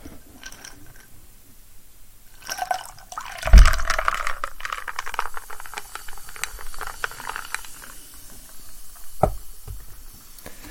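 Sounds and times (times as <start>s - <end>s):
tonic water being poured into a glass: 2.3s - 9.8s
low thump: 3.4s - 4.3s.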